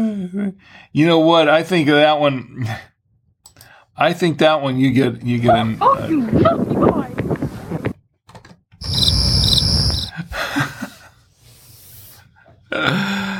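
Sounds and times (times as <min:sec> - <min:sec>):
speech: 0:00.0 - 0:02.9, 0:04.0 - 0:07.2, 0:12.7 - 0:13.2
cricket chirping sound effect: 0:08.8 - 0:10.1.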